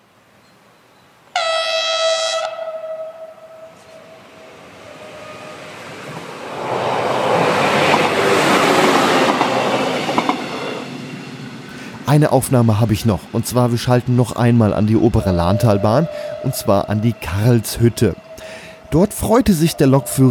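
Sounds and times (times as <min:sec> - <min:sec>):
loud harmonic horn blast of a VT 628 diesel railcar: 0:01.3 - 0:05.8, 0:14.8 - 0:20.3
VT 628 diesel railcar engine roar: 0:02.4 - 0:20.3
rolling wheels of a VT 628 diesel railcar: 0:03.8 - 0:20.3
speech: 0:12.1 - 0:18.3, 0:18.9 - 0:20.3.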